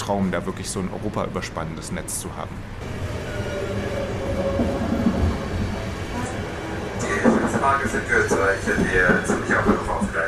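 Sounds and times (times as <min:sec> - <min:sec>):
train rolling into station with low rumble: 0:00.0 - 0:10.2
speech: 0:00.1 - 0:03.2, 0:07.6 - 0:10.2
voices murmuring: 0:06.0 - 0:10.2.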